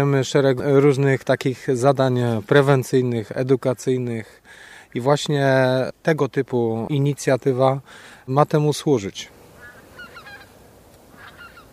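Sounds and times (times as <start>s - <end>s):
speech: 0.0s - 9.4s
soft outdoor hiss: 0.0s - 11.7s
geese honking as they fly over: 9.6s - 11.7s.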